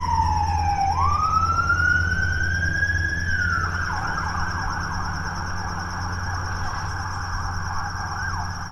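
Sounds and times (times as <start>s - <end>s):
helicopter: 0.0s - 8.7s
police car: 0.0s - 8.7s.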